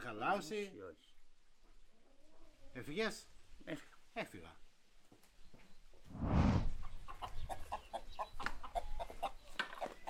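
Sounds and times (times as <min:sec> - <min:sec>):
speech: 0:00.0 - 0:01.1, 0:02.8 - 0:04.6
hen clucking: 0:06.7 - 0:10.0.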